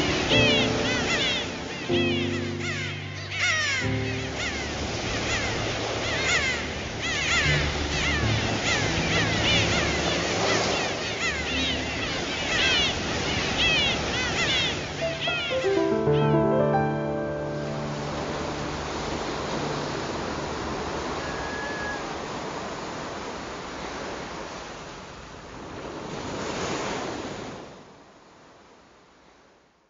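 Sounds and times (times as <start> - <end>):
sea surf rushing: 0.0 - 27.8.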